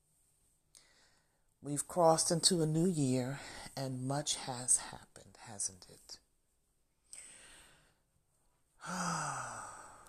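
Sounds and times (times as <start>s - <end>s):
deep sigh-like breath: 0.8s - 1.4s, 7.1s - 8.1s, 8.8s - 10.0s
speech: 1.6s - 6.2s, 8.8s - 9.8s.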